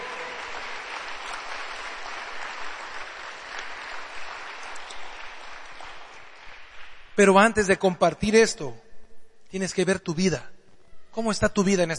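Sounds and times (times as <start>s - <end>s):
crowd applauding: 0.0s - 7.2s
speech: 7.2s - 8.8s, 9.5s - 10.5s, 11.2s - 11.9s.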